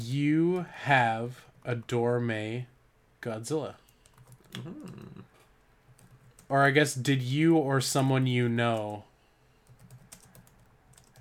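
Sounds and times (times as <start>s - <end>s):
speech: 0.0s - 3.8s, 4.5s - 5.3s, 6.5s - 9.1s
typing on a computer keyboard: 3.9s - 4.5s, 5.9s - 6.5s, 9.6s - 11.1s.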